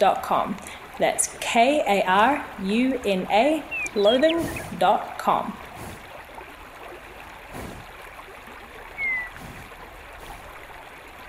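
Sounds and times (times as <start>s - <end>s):
speech: 0.0s - 5.6s
river flowing: 0.0s - 11.2s
bird chirp: 3.6s - 4.8s, 9.0s - 9.6s.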